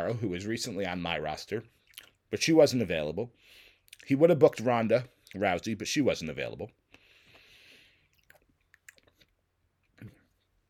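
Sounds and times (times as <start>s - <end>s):
speech: 0.0s - 6.8s
person chewing food with wet crunchy bites: 1.8s - 2.2s, 6.9s - 10.6s
faint breathy noise: 3.3s - 3.9s, 6.9s - 8.2s.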